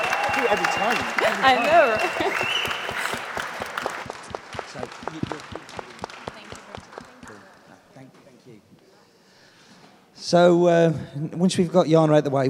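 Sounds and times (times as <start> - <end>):
small audience applause: 0.0 - 7.8
laughter: 0.3 - 6.0
speech: 0.4 - 2.5, 10.3 - 12.4.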